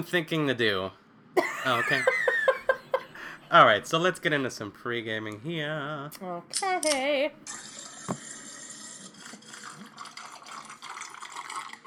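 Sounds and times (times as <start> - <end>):
speech: 0.0 - 2.2, 3.5 - 7.7
laughter: 1.4 - 3.5
liquid bubbling and gurgling: 7.6 - 11.8.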